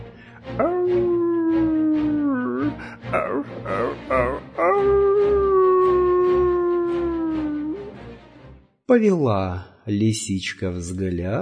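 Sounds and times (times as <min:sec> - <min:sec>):
speech: 0:00.6 - 0:01.0, 0:08.9 - 0:11.3
wolf howling: 0:00.6 - 0:02.7, 0:03.3 - 0:08.0.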